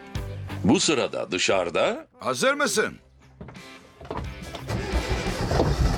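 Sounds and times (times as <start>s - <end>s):
speech: 0.6s - 4.2s
minibus engine cranking and running with rough idle: 4.5s - 5.9s.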